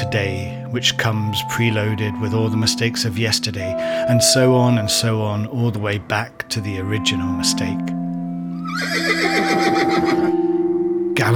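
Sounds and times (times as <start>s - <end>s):
speech: 0.1s - 8.0s, 11.2s - 11.3s
horse ridden over a heath neighing: 8.6s - 10.4s.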